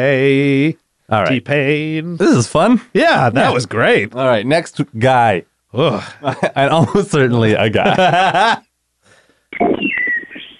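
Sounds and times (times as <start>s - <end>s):
speech: 0.0s - 8.7s
laughter: 5.8s - 7.0s, 7.7s - 8.7s
bird calling: 9.6s - 10.5s.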